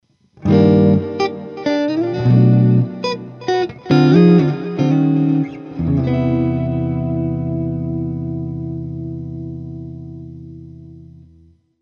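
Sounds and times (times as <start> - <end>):
tape echo effect: 0.4 - 9.1.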